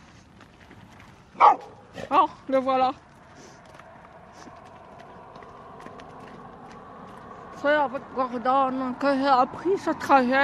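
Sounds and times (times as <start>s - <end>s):
quiet outdoor noise: 0.0s - 10.4s
single sharp dog bark: 1.4s - 1.8s
speech: 2.1s - 3.1s, 7.6s - 10.4s.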